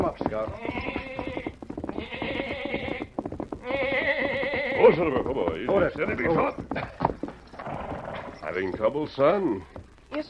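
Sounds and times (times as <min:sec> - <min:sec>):
speech: 0:00.4 - 0:00.7, 0:04.8 - 0:07.0, 0:08.5 - 0:10.2
black lamb bleating: 0:00.4 - 0:05.0.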